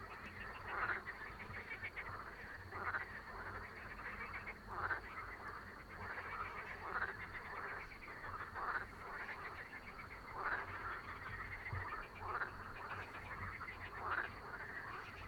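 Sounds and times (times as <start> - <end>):
frogs croaking in chorus: 0.0 - 15.2.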